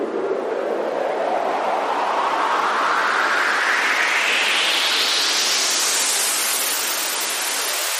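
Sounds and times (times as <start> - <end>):
beach day noise build: 0.0 - 7.9.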